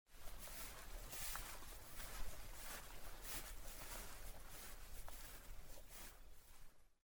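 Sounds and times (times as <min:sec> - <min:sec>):
footsteps walking: 0:00.1 - 0:07.0.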